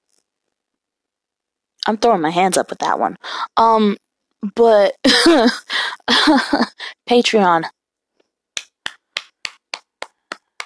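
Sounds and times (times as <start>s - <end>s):
speech: 1.9s - 7.8s
hand claps: 8.6s - 10.6s.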